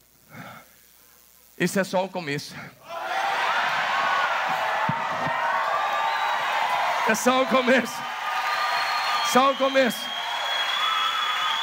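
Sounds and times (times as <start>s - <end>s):
speech: 1.6s - 2.9s, 7.1s - 8.2s, 9.3s - 10.1s
large audience shouting and cheering in response to a sermon: 2.8s - 11.6s
people whooping in a crowd: 2.8s - 11.6s.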